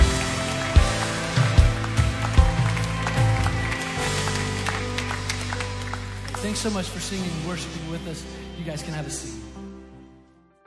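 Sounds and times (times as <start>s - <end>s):
church audience clapping during a worship service: 0.0s - 8.2s
speech: 6.5s - 9.4s.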